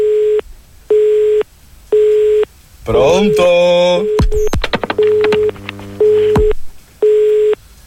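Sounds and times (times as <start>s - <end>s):
telephone line tone beeps of an unanswered call: 0.0s - 2.5s, 4.0s - 7.6s
speech: 2.9s - 4.2s.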